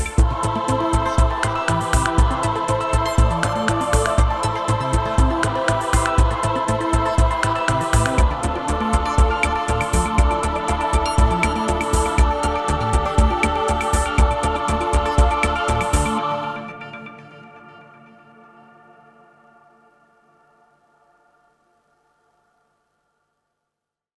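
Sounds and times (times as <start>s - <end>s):
dry synthesizer: 0.2s - 18.1s.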